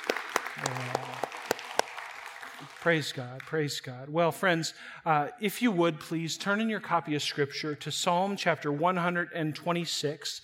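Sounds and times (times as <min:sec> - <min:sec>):
audience applauding: 0:00.0 - 0:03.5
speech: 0:00.6 - 0:01.0, 0:02.8 - 0:10.4.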